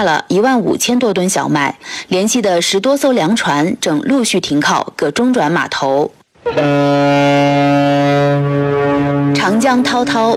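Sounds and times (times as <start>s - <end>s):
speech: 0.0s - 10.3s
cargo ship horn blast on the Yangtze River: 6.4s - 10.3s.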